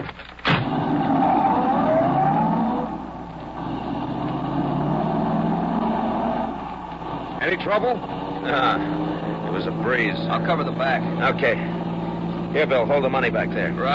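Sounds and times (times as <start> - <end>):
getaway car engine starting click: 0.4 - 1.1
getaway car engine revving and driving off: 0.5 - 13.9
speech: 7.6 - 11.8, 12.5 - 13.9.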